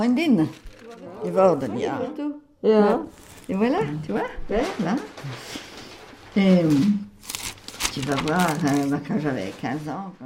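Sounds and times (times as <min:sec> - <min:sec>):
speech: 0:00.0 - 0:05.7, 0:06.4 - 0:07.1, 0:08.0 - 0:10.2
photo album pages being turned with paper rustling: 0:00.4 - 0:01.2, 0:03.1 - 0:04.1, 0:05.1 - 0:09.8.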